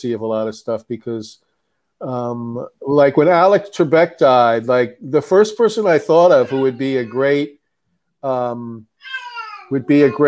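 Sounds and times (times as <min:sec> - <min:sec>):
speech: 0:00.0 - 0:07.6, 0:08.2 - 0:10.2
pet cat meowing: 0:06.3 - 0:07.3, 0:09.0 - 0:10.2.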